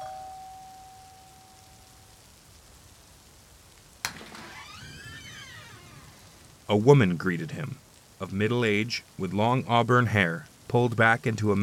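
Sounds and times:
doorbell chime: 0.0 - 1.4
steady hiss: 0.0 - 11.6
warbling creaky tones: 4.1 - 6.7
speech: 6.7 - 11.6.

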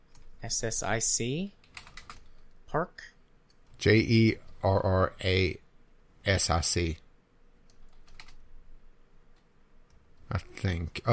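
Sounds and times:
speech: 0.4 - 1.6, 2.7 - 3.1, 3.8 - 5.6, 6.2 - 7.0, 10.3 - 11.1
typing on a computer keyboard: 1.6 - 2.3, 7.7 - 8.4.

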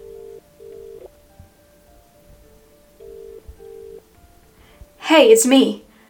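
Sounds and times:
double-burst phone ringback tone of a returned call: 0.0 - 1.1, 3.0 - 4.0
faint noise: 0.0 - 6.0
speech: 5.1 - 5.8.

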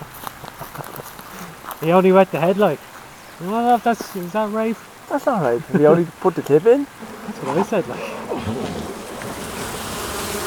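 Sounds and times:
speech: 1.8 - 8.9
dense swarm of bees buzzing: 4.3 - 10.4.

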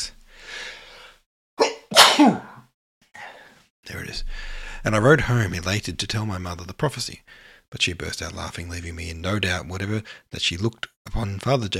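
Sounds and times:
single loud sneeze: 1.6 - 2.7
speech: 4.8 - 11.7.

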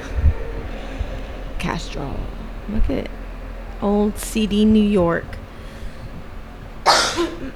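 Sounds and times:
speech: 1.6 - 3.2, 3.8 - 5.4
single sharp cough with raspy tail: 6.9 - 7.5.

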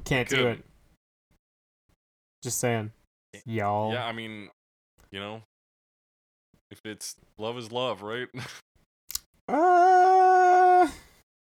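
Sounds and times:
speech: 0.1 - 0.7, 2.4 - 5.5, 6.7 - 8.6, 9.5 - 10.1
dog howling: 9.5 - 11.0.

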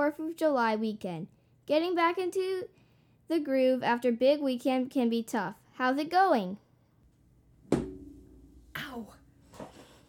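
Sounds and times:
speech: 0.0 - 6.6, 9.0 - 9.2
person bumping into a desk: 7.7 - 8.3.

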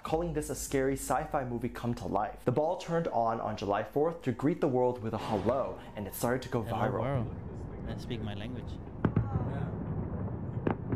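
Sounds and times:
speech: 0.1 - 8.9
fireworks bursts: 5.2 - 10.9
steady low rumble: 5.4 - 10.9.

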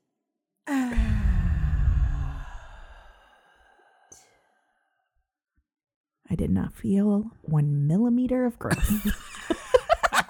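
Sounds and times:
deep breath in during a group breathing exercise: 0.7 - 5.0
speech: 6.3 - 9.7
laughter: 8.7 - 10.2.

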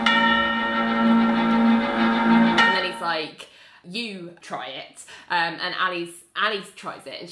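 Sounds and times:
deep bell tolling: 0.0 - 3.2
speech: 3.2 - 7.2.

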